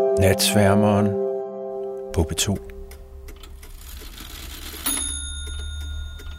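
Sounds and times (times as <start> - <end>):
speech: 0.2 - 1.2, 2.2 - 2.7
clock ticking softly: 2.2 - 6.3
single bright metallic chime: 4.9 - 6.3.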